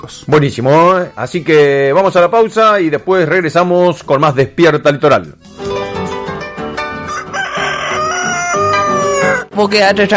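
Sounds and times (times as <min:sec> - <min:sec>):
speech: 0:00.0 - 0:05.6, 0:09.6 - 0:10.1
rooster crowing: 0:07.0 - 0:09.5.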